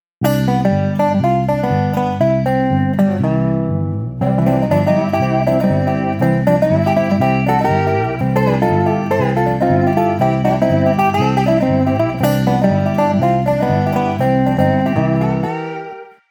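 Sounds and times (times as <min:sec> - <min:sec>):
country guitar: 0:00.2 - 0:16.3.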